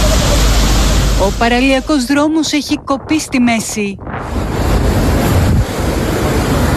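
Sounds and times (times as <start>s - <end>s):
rushing floodwater from an overflowing river: 0.0s - 2.8s, 3.8s - 6.7s
wind buffeting the microphone: 0.0s - 6.7s
speech: 1.2s - 4.4s.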